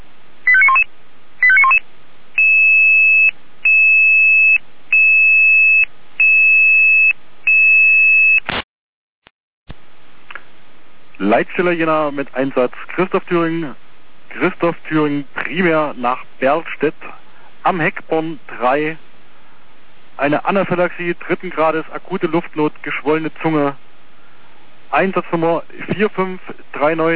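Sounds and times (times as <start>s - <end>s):
fire brigade radio alarm tone sequence in Berstedt Germany: 0.5s - 1.8s, 2.4s - 8.4s
speech: 11.3s - 19.0s, 20.2s - 23.8s, 24.9s - 27.1s.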